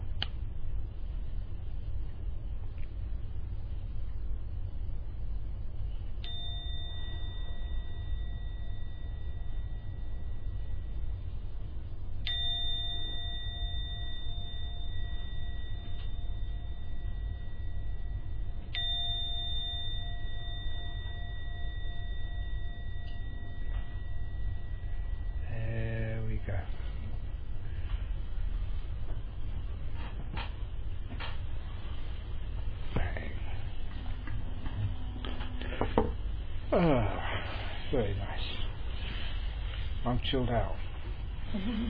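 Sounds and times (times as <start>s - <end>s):
low rumble: 0.0s - 41.8s
gong struck and ringing out: 6.2s - 11.4s, 12.2s - 27.2s
speech: 36.7s - 38.6s, 40.0s - 40.8s, 41.5s - 41.8s.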